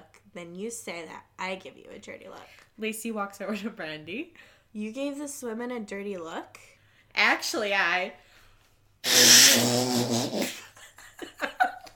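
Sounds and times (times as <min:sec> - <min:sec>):
speech: 0:00.4 - 0:08.3, 0:09.0 - 0:10.6
voice imitating a fart: 0:09.0 - 0:10.7.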